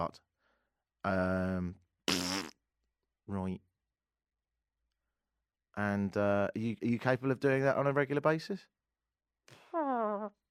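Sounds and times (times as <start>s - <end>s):
speech: 0.0s - 0.3s, 1.0s - 1.8s, 3.3s - 3.7s, 5.8s - 8.8s
loud farts: 2.1s - 2.6s.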